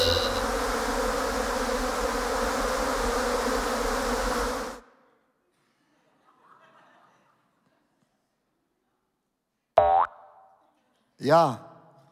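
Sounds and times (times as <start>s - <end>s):
short springy boing: 0.0s - 0.4s, 9.8s - 10.4s
dense swarm of buzzing locusts: 0.0s - 4.8s
laughter: 5.9s - 7.9s
speech: 11.2s - 11.6s.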